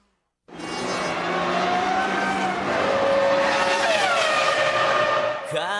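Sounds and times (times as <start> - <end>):
race car engine roaring through bends: 0.5 - 5.6
race car tire squeal: 0.5 - 5.6.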